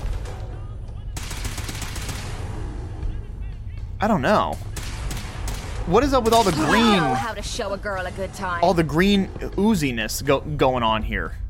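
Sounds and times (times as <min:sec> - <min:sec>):
rapid automatic gunfire in a video game: 0:01.1 - 0:02.5, 0:04.7 - 0:07.2
speech: 0:04.0 - 0:04.7, 0:05.9 - 0:11.4.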